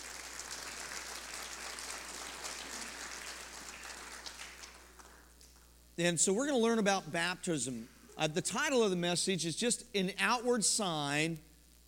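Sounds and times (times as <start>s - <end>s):
church audience clapping: 0.0s - 5.7s
speech: 6.0s - 11.5s.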